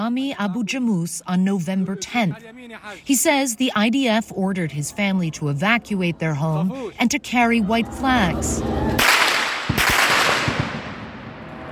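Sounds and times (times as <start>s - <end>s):
loud hissing outdoor background: 0.0s - 11.7s
speech: 0.1s - 9.1s
gunshots in a street: 9.0s - 11.7s.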